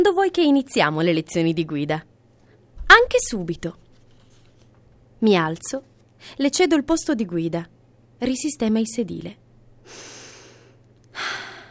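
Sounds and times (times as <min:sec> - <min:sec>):
speech: 0:00.0 - 0:02.1, 0:02.9 - 0:03.8, 0:05.2 - 0:10.1
deep breath in a car's driver's seat: 0:09.8 - 0:11.6.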